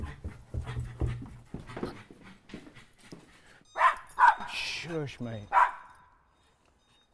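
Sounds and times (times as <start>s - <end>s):
excited dog panting: 0.0s - 3.6s
dog giving a sharp bark-like yelp: 3.7s - 4.5s, 5.5s - 6.1s
speech: 4.9s - 5.6s.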